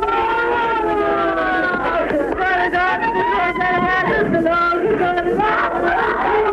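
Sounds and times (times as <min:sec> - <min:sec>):
crowd of women crying out and wailing: 0:00.0 - 0:06.5
dense murmur of other voices: 0:00.0 - 0:06.5.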